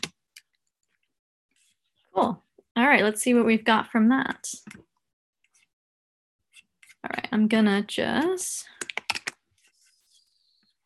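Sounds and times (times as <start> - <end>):
speech: 2.2 - 4.9, 7.0 - 8.9
computer keyboard key clicks and light taps: 8.8 - 9.4.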